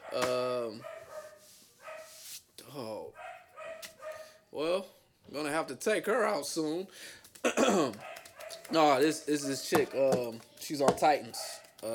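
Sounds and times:
dog barking: 0.0 - 2.1, 3.2 - 4.4, 8.0 - 9.8
speech: 5.6 - 8.1, 8.7 - 11.9.

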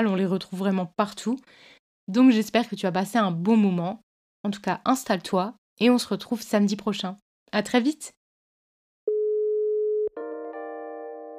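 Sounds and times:
speech: 0.0 - 8.2
telephone busy tone after hanging up: 9.1 - 10.1.

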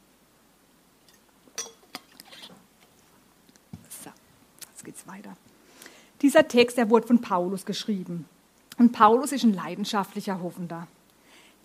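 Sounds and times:
glass clinking: 1.0 - 2.2
speech: 5.0 - 5.5, 6.2 - 11.0.

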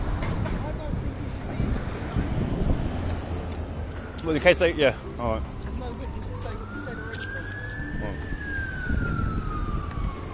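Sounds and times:
continuous low rumble of road traffic: 0.0 - 10.3
fire engine siren passing: 4.0 - 10.3
speech: 4.3 - 5.5.

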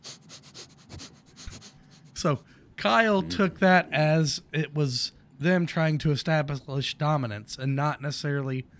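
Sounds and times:
person imitating men sniffing the air: 0.0 - 2.2
speech: 2.2 - 8.7.

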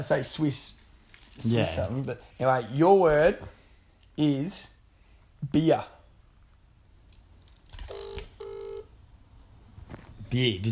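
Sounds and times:
speech: 0.0 - 0.8, 1.4 - 3.6, 4.2 - 4.7, 5.4 - 6.0, 10.3 - 10.7
mobile phone dialing electronic tones: 7.9 - 8.9.

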